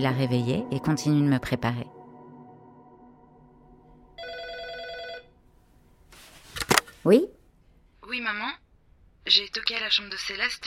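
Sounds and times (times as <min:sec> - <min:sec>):
speech: 0:00.0 - 0:02.0, 0:07.0 - 0:07.4, 0:08.1 - 0:08.6, 0:09.2 - 0:10.6
hotel room telephone ringing with an electronic trill: 0:04.2 - 0:05.5
rustling and clattering: 0:06.1 - 0:07.0.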